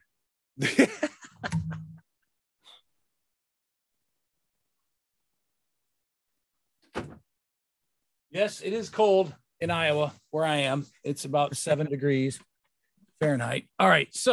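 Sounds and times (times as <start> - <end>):
laughter: 0.6 - 2.0
door in Iowa shutting with a rattling thud: 6.8 - 7.2
speech: 8.4 - 12.5, 13.2 - 14.3.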